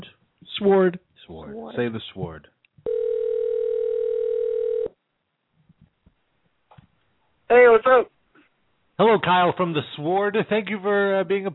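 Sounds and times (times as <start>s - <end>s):
speech: 0.6s - 2.6s, 7.5s - 8.2s, 9.0s - 11.5s
telephone dial tone while dialing a call: 2.8s - 5.0s.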